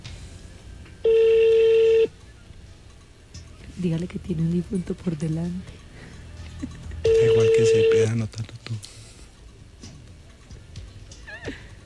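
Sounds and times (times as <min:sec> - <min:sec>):
telephone call transfer tone: 0:01.0 - 0:02.1, 0:07.0 - 0:08.1
speech: 0:03.8 - 0:05.8, 0:07.6 - 0:09.0.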